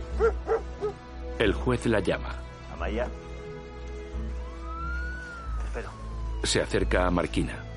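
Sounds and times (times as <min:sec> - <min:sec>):
speech: 0:00.2 - 0:00.6, 0:01.4 - 0:03.3, 0:05.8 - 0:07.7
dog yelp: 0:00.2 - 0:01.0
police dog barking: 0:00.2 - 0:01.0.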